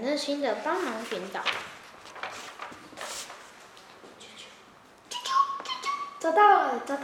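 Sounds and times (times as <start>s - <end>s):
speech: 0.0s - 1.8s, 6.2s - 7.0s
soft rustling: 0.2s - 4.7s
small bird whistled call: 5.1s - 6.2s.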